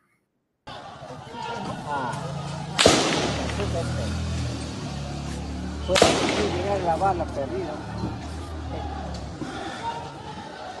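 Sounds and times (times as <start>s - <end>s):
excited voices talking and shouting: 0.7s - 2.8s, 4.8s - 10.7s
gunshots fired during house attack: 2.7s - 4.0s, 5.8s - 7.0s.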